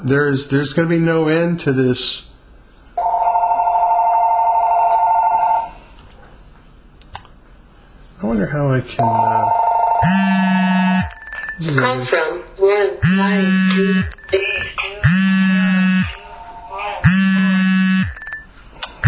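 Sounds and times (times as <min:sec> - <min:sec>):
speech: 0:00.0 - 0:02.3, 0:08.3 - 0:10.7, 0:11.6 - 0:14.5
electronic phone ringtones: 0:03.0 - 0:05.7, 0:09.0 - 0:11.2, 0:13.0 - 0:16.2, 0:17.0 - 0:18.4
overlapping electronic tones and chirps: 0:10.0 - 0:11.2, 0:13.0 - 0:14.3, 0:17.0 - 0:18.2.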